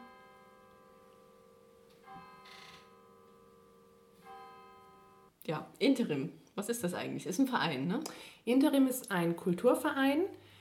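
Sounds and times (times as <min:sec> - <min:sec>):
church bells ringing on a Sunday evening in Münsingen: 0:00.0 - 0:05.3
speech: 0:05.5 - 0:10.5.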